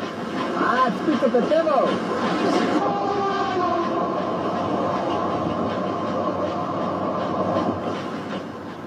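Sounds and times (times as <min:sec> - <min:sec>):
express train rushing past a station: 0:00.0 - 0:08.8
speech: 0:01.0 - 0:03.0.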